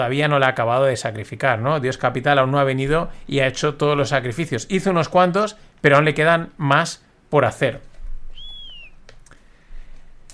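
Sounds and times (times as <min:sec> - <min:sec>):
speech: 0:00.0 - 0:07.9
quiet hiss: 0:00.0 - 0:10.3
short high-pitched whistle sound effect: 0:08.3 - 0:09.0.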